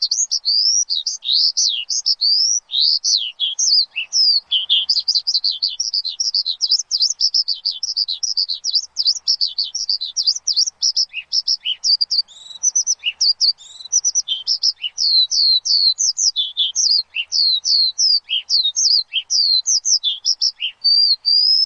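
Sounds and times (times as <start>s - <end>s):
Javan bush lark song: 0.0s - 21.6s.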